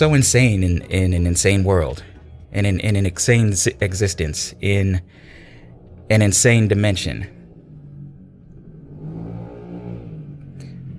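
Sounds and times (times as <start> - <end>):
speech: 0.0 - 5.4, 6.1 - 7.4
motorcycle engine rumbling past: 4.3 - 10.9.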